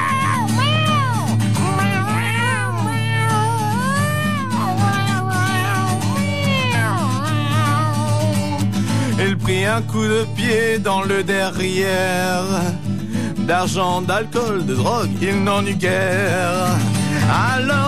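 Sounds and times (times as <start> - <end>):
cat meowing: 0.0 - 8.7
speech: 9.7 - 12.9, 13.5 - 17.8.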